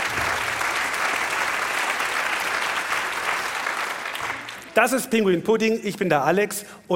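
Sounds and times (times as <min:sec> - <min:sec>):
audience applauding an orchestra conductor: 0:00.0 - 0:04.9
speech: 0:04.8 - 0:06.9.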